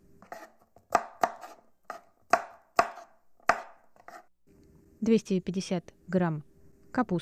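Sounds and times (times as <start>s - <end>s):
knife slicing onion and carrot on a cutting board: 0.2s - 4.3s
speech: 5.0s - 7.2s.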